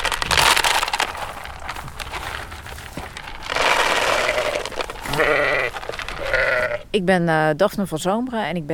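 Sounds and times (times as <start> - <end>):
steady crunching and rustling as sheep are given feed: 0.0 - 6.9
several sheep bleating at feeding time inside a wolf-proof fence: 3.5 - 6.9
speech: 7.0 - 8.7.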